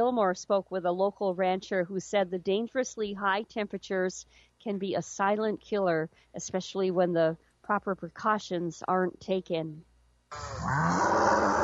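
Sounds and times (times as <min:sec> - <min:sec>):
speech: 0:00.0 - 0:11.6
cow mooing: 0:10.3 - 0:11.6.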